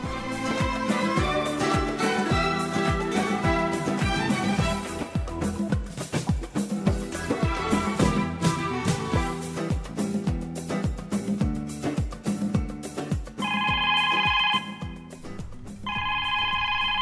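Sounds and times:
rhythmic music with deep thumping beats: 0.0s - 15.9s
telephone ringing in electronic bursts: 13.4s - 15.1s, 15.8s - 17.0s.

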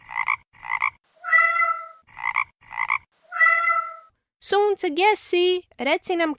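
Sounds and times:
frog croaking: 0.0s - 4.1s
speech: 4.5s - 6.3s.

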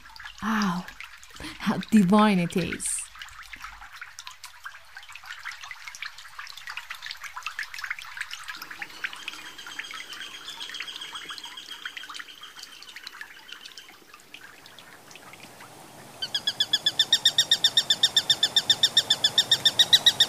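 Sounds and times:
stream trickling in green oak forest near Sisakht: 0.0s - 20.2s
speech: 1.6s - 2.9s
faint bird chirps: 8.9s - 13.7s, 16.2s - 20.2s.

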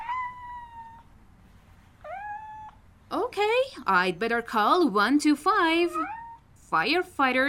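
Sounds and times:
kitten stuck behind iron bars meowing plaintively: 0.0s - 1.1s, 2.0s - 2.8s
speech: 3.3s - 7.4s.

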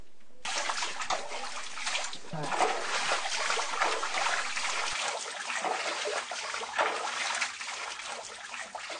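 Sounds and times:
stream rushing through an old underground passage beneath a house: 0.4s - 8.9s.

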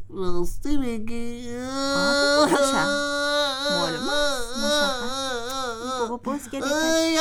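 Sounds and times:
speech: 0.1s - 3.1s, 6.0s - 7.1s
person voice acting a sock whimpering and crying: 1.7s - 7.1s.

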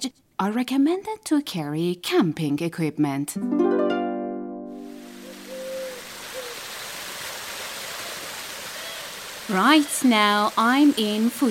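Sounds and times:
speech: 0.0s - 4.0s, 9.5s - 11.4s
held musical tone: 3.4s - 6.1s
river flowing through a village: 4.8s - 11.4s.

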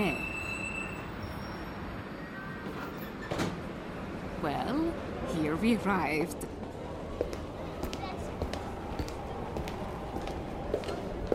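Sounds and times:
faint high-pitched wheel squeal: 0.0s - 2.2s
subway train rumbling along the tracks: 0.0s - 11.3s
speech: 4.4s - 6.6s.

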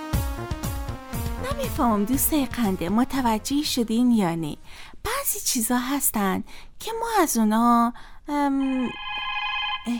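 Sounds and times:
speech: 1.5s - 9.1s
telephone ringing with bright electronic tonal notes: 8.6s - 9.9s.

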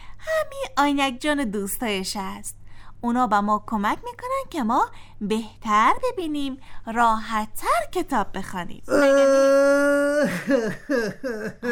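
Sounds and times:
speech: 0.8s - 11.7s
person whimpering and crying: 8.9s - 11.7s.

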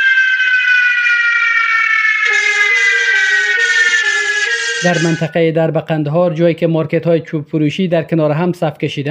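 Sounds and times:
fire engine siren wailing at a fire at wood-selling markets in Herat: 0.0s - 5.5s
blaring horn-like layer: 2.2s - 5.4s
speech: 4.8s - 9.0s.

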